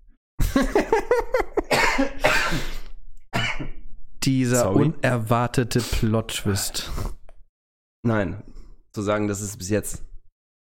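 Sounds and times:
speech: 0:00.6 - 0:01.2, 0:04.3 - 0:07.2, 0:08.0 - 0:10.1
person sneezing loudly: 0:01.7 - 0:02.9.

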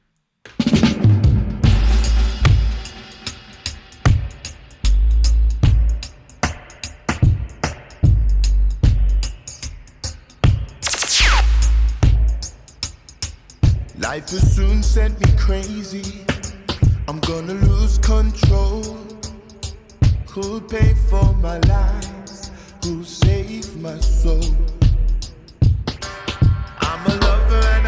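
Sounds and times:
punchy drums driving a steady beat: 0:00.6 - 0:09.7, 0:10.4 - 0:23.9, 0:24.8 - 0:27.3
rising synth sweep: 0:10.8 - 0:12.4
heavy booming bassline: 0:10.8 - 0:12.5
speech: 0:14.3 - 0:16.3, 0:17.1 - 0:19.1, 0:20.4 - 0:22.2, 0:22.8 - 0:24.8.

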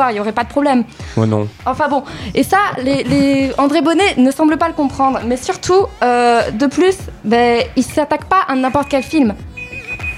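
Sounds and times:
speech: 0:00.0 - 0:09.5
mobile phone short high-pitched electronic tone: 0:08.6 - 0:10.1.

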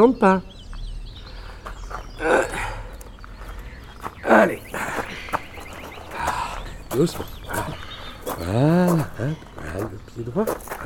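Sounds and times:
speech: 0:00.0 - 0:00.5, 0:07.0 - 0:07.4, 0:08.4 - 0:10.7
crow cawing: 0:04.5 - 0:08.4.

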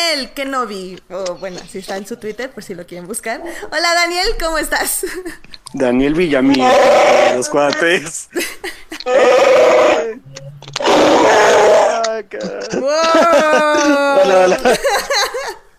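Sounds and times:
speech: 0:00.1 - 0:15.6
person imitating an animal roar: 0:06.4 - 0:07.8, 0:09.0 - 0:14.6
laughter: 0:08.3 - 0:09.3, 0:11.9 - 0:15.7.

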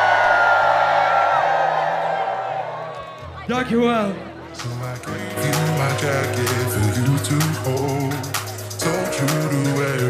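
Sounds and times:
whoops: 0:00.0 - 0:03.2
large crowd screaming and cheering: 0:00.0 - 0:10.0
speech: 0:03.5 - 0:10.0.

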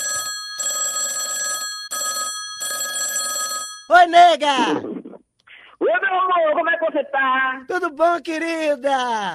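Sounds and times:
telephone ringing as an outgoing call is placed: 0:00.0 - 0:04.2
speech: 0:03.9 - 0:05.0, 0:05.9 - 0:09.3.

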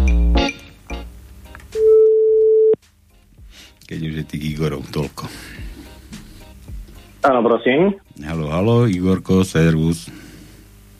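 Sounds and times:
telephone ringback tone from an outgoing call: 0:01.8 - 0:02.8
speech: 0:03.9 - 0:05.8, 0:07.2 - 0:10.2.

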